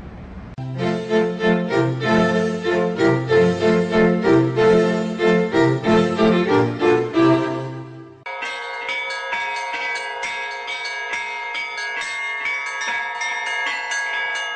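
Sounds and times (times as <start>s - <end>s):
church bells ringing in a continuous peal: 0.6s - 14.5s.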